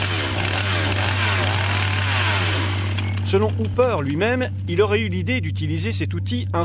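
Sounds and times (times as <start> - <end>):
chainsaw revving: 0.0 - 3.6
speech: 3.3 - 6.6.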